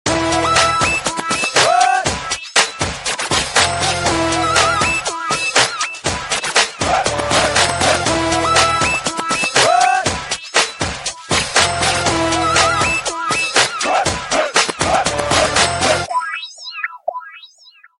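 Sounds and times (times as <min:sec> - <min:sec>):
breakbeat ringtone rhythm mix from a Samsung SCH-W770 phone: 0:00.1 - 0:17.9.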